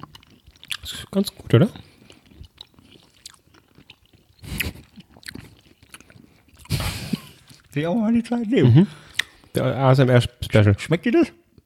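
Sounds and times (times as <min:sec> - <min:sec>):
chewing soft caramel toffees with a chocolate filling: 0:00.0 - 0:07.8
speech: 0:00.8 - 0:01.9, 0:07.8 - 0:09.0, 0:09.6 - 0:11.4.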